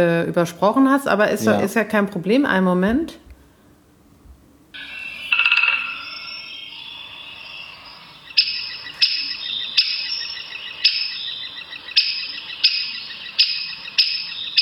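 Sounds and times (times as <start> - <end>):
speech: 0.0 - 3.2
woodpecker alarm call: 4.8 - 14.6.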